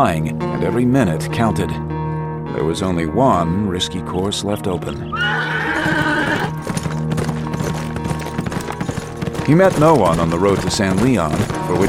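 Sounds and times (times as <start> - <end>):
speech: 0.0 - 1.9, 2.5 - 6.1, 9.5 - 11.8
horse neighing with a high shrill whinny on a road: 5.0 - 6.6
horse hooves clip-clopping on a road: 5.2 - 11.8.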